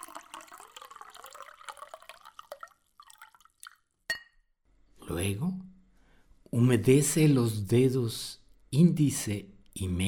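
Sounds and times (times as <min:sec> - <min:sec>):
water pouring into a glass: 0:00.0 - 0:04.3
sharp glassy clink: 0:04.1 - 0:04.5
speech: 0:05.1 - 0:05.7, 0:06.5 - 0:10.0.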